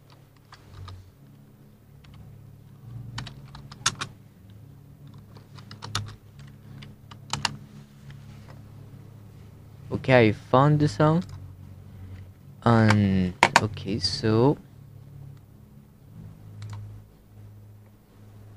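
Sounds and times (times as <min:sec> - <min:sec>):
low steady hum: 0:00.0 - 0:18.5
fingers typing on a computer keyboard: 0:03.2 - 0:04.1, 0:05.0 - 0:07.6, 0:16.6 - 0:16.8
speech: 0:10.1 - 0:11.4, 0:12.7 - 0:14.7.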